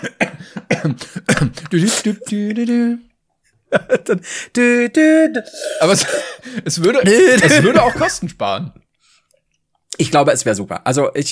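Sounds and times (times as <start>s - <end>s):
person coughing: 0.0s - 2.3s, 5.4s - 8.2s
speech: 0.8s - 3.1s, 3.7s - 8.8s, 9.9s - 11.3s
laughter: 3.7s - 4.2s, 6.5s - 8.3s
drawn-out vocal tone: 5.0s - 6.4s.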